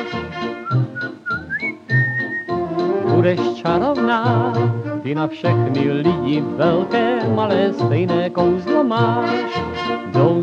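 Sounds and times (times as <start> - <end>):
fuller musical accompaniment with a steady pulsing lower part: 0.0 - 10.4
small pipe whistle playing a bright gliding melody: 0.6 - 2.6
speech: 3.2 - 10.4.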